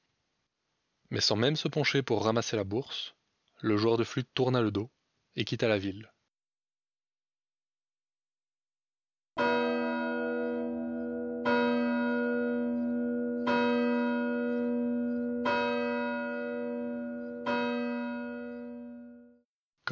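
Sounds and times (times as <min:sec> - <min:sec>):
speech: 0:01.1 - 0:06.1
deep church bell tolling midnight: 0:09.4 - 0:19.4.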